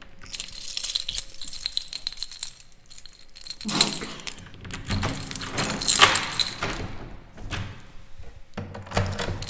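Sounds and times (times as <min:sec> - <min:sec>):
keys jangling while locking a door with several locks: 0:00.2 - 0:07.7, 0:08.9 - 0:09.4
door with several locks being locked: 0:03.5 - 0:07.8, 0:08.7 - 0:09.4.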